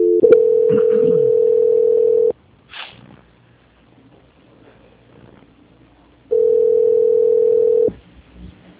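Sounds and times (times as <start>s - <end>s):
telephone tone during a call transfer: 0.0s - 2.3s, 6.3s - 8.0s.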